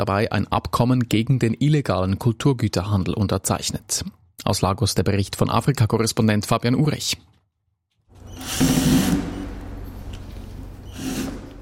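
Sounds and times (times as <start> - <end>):
speech: 0.0 - 7.4, 8.4 - 9.3
power screwdriver removing screws from a wooden crate in a museum hall in Lagos: 8.2 - 9.5, 10.8 - 11.6.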